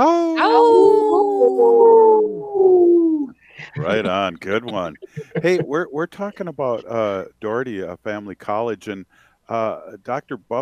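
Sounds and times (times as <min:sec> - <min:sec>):
group of people howling in imitation of wolves: 0:00.3 - 0:03.3
laughter: 0:03.6 - 0:06.0
speech: 0:03.9 - 0:10.6.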